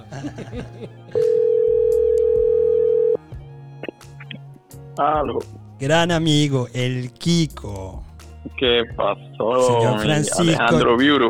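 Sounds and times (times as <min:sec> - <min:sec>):
laughter: 0:00.0 - 0:01.4
speech: 0:00.2 - 0:01.2, 0:05.0 - 0:11.2
telephone ringing tone while a call is placed: 0:01.2 - 0:03.2.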